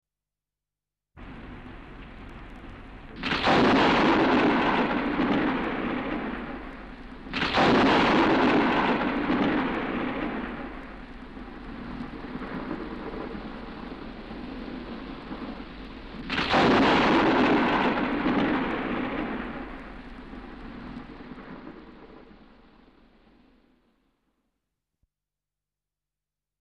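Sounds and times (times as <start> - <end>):
thunderstorm with lightning: 1.2 - 23.8.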